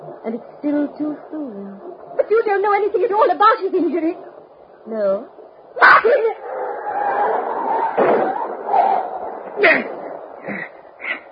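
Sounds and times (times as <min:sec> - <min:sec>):
steady low rumble like a car engine: 0:00.0 - 0:11.3
speech: 0:00.2 - 0:06.5, 0:09.6 - 0:10.0
dog yelping after being hit by a car: 0:05.8 - 0:09.6
car hitting a dog on a road in the rain: 0:07.7 - 0:10.0.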